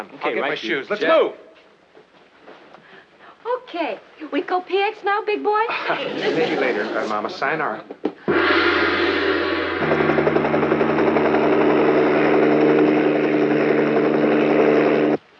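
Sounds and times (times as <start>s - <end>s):
speech: 0.0s - 1.4s, 3.4s - 8.6s
helicopter engine and rotors roaring: 9.7s - 15.2s.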